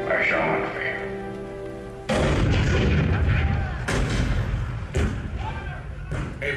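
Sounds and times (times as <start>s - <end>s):
speech: 0.1s - 0.8s
cannon fire booming: 2.1s - 6.4s.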